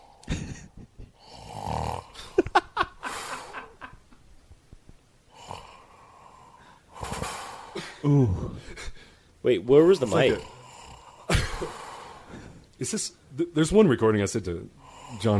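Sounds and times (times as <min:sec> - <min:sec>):
loud rough human snoring: 0:01.2 - 0:02.2, 0:05.3 - 0:07.7, 0:10.1 - 0:11.3
speech: 0:08.0 - 0:10.5, 0:12.8 - 0:15.3.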